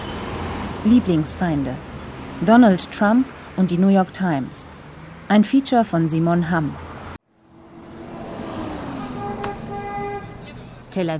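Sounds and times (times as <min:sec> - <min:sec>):
busy street traffic rumbling: 0:00.0 - 0:11.1
speech: 0:00.8 - 0:06.9, 0:11.0 - 0:11.1
car horns tooting in short bursts: 0:08.6 - 0:11.0.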